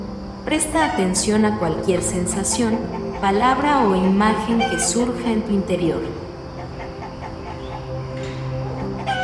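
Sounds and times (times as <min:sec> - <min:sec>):
speech: 0:00.5 - 0:06.2
hen clucking: 0:02.4 - 0:05.0, 0:06.5 - 0:09.2
rooster crowing: 0:06.7 - 0:09.2.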